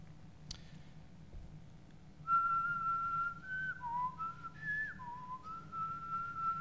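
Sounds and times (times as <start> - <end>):
low hum: 0.0 - 6.5
soft whistled tune from a drum corps director in a gym: 2.2 - 6.5.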